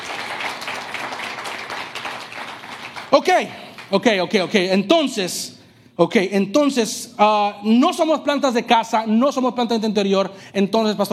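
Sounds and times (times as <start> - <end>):
church audience applauding: 0.0 - 4.2
speech: 3.1 - 11.1.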